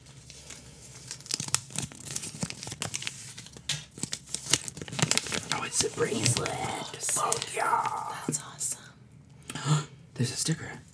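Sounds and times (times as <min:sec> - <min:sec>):
thin paper from inside a Kinder Egg crinkling and tearing: 0:00.1 - 0:08.3
speech: 0:05.8 - 0:08.4, 0:10.2 - 0:10.8.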